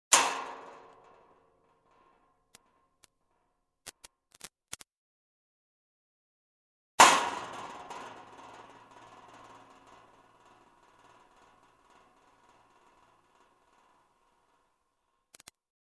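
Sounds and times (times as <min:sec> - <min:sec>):
stone thrown at a metal fence hitting it: 0:00.1 - 0:03.4, 0:07.0 - 0:15.2.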